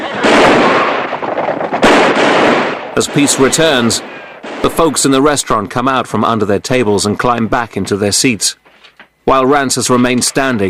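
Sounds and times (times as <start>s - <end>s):
pistol gunshots fired by a gang at townsfolk: 0.1s - 4.9s
speech: 3.0s - 8.6s, 9.2s - 10.6s.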